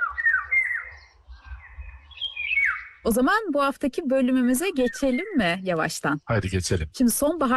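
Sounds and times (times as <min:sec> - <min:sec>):
long-winged poplar-dwelling bird singing fluting whistled phrases: 0:00.0 - 0:01.2, 0:02.1 - 0:03.0
speech: 0:03.0 - 0:07.5.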